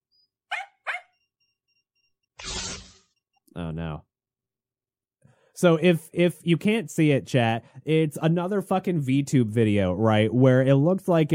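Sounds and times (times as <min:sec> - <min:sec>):
animated virtual dog barking in an online video: 0:00.5 - 0:01.2
speech: 0:03.6 - 0:04.1, 0:05.6 - 0:11.3.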